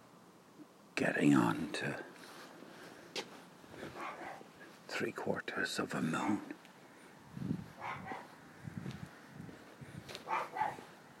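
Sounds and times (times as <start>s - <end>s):
speech: 1.0s - 2.1s, 5.0s - 6.6s
dog barking at night outdoors: 3.9s - 4.5s, 7.8s - 8.3s, 10.2s - 10.9s.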